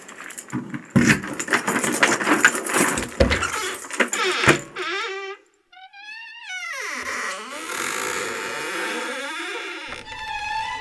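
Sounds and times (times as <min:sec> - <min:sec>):
keys jangling and clattering: 0:00.0 - 0:04.6
high-pitched squeaky creak: 0:03.3 - 0:10.7.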